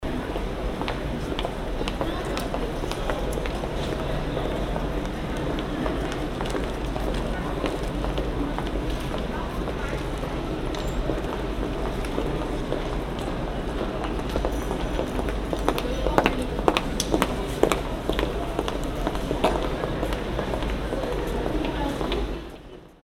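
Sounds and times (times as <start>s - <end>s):
pedestrians in a hall: 0.0s - 23.0s.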